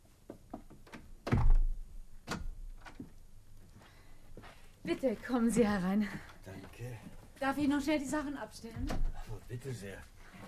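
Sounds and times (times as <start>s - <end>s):
heavy door closing with a thunk: 1.2s - 3.1s, 8.8s - 9.3s
speech: 4.9s - 10.2s.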